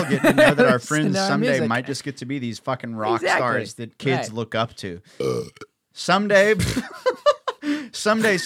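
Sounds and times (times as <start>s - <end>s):
laughter: 0.0s - 1.6s, 6.5s - 8.4s
speech: 0.0s - 8.4s
loud drawn-out burp: 5.2s - 5.8s.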